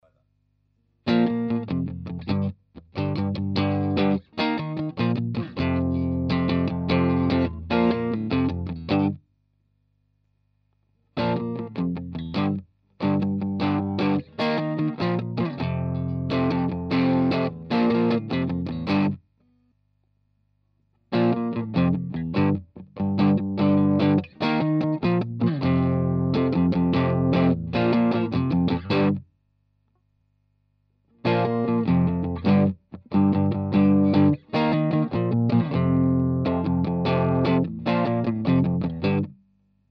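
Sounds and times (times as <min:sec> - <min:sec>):
electric guitar through a modded overdrive pedal and valve amplifier: 0:01.1 - 0:09.2, 0:11.2 - 0:19.2, 0:21.1 - 0:29.2, 0:31.2 - 0:39.4.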